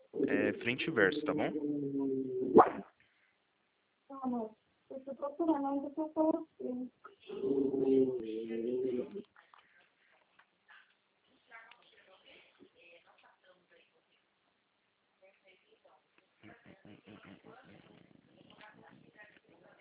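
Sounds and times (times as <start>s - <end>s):
speech: 0.3s - 2.9s, 4.1s - 9.5s
dog barking: 2.6s - 2.9s.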